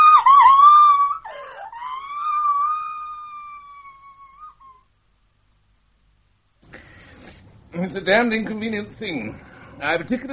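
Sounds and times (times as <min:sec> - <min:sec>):
girl screaming shrilly: 0:00.0 - 0:04.8
speech: 0:07.8 - 0:10.3.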